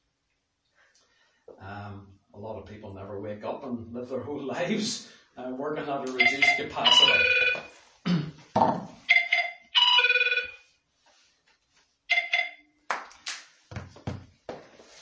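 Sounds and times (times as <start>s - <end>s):
speech: 1.6s - 7.6s
phone ringtone in short melodic bursts: 6.2s - 7.8s, 9.1s - 10.7s, 12.1s - 12.7s.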